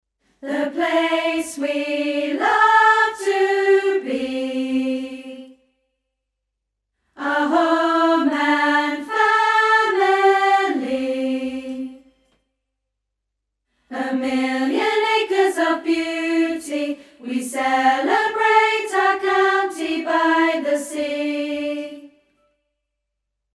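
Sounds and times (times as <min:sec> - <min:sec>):
alto chorus singing: 0:00.4 - 0:05.6, 0:07.2 - 0:12.2, 0:13.9 - 0:22.3.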